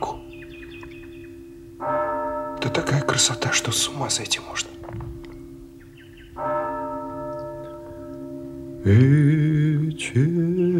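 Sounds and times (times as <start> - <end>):
church bells tolling for an evening service: 0.0 - 10.7
speech: 2.8 - 4.7, 8.9 - 9.4, 10.1 - 10.3.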